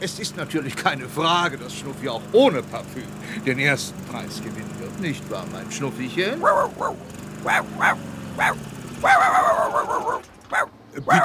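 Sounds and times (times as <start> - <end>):
speech: 0.0 - 10.3, 11.0 - 11.2
small dog yapping and barking: 6.4 - 11.2.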